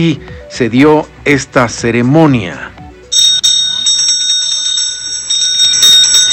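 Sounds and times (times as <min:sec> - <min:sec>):
speech: 0:00.0 - 0:02.7
ceremonial bells ringing: 0:03.1 - 0:06.3.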